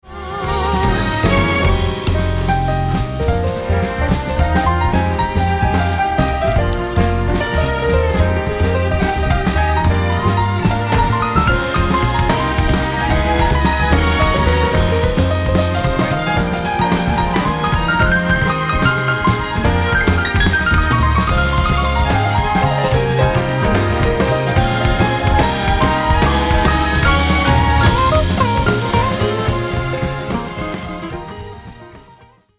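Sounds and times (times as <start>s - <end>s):
piano: 0.0s - 32.5s.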